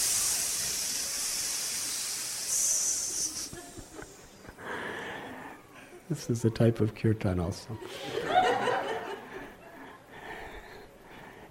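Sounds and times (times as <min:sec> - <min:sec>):
voice imitating snakes hissing: 0:00.0 - 0:04.6
laughter: 0:03.1 - 0:04.6, 0:07.8 - 0:10.0
speech: 0:06.1 - 0:08.4.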